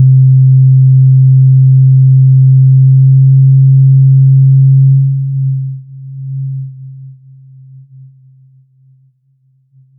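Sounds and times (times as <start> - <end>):
PS2 startup sine tone: 0.0 - 7.2.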